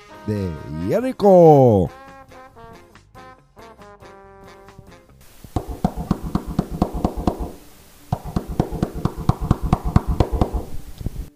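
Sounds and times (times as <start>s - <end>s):
speech: 0.2s - 2.0s
soldiers knocking forcefully on a house door in Jericho: 5.5s - 10.7s.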